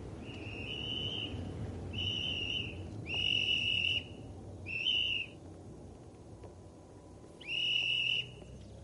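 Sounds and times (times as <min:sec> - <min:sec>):
whistle blasts to stop a car: 0:00.2 - 0:05.4, 0:07.4 - 0:08.5.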